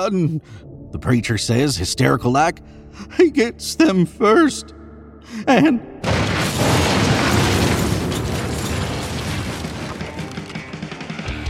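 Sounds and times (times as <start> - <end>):
speech: 0.0 - 6.1
explosion blowing out the side of a chapel: 6.0 - 10.0
crackling debris-like bursts: 6.0 - 11.1.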